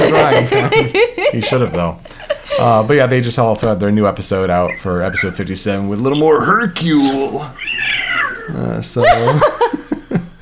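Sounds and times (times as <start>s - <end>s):
laughter: 0.0s - 2.9s, 9.0s - 10.4s
speech: 0.4s - 10.2s
cat meowing and yowling: 7.0s - 8.7s.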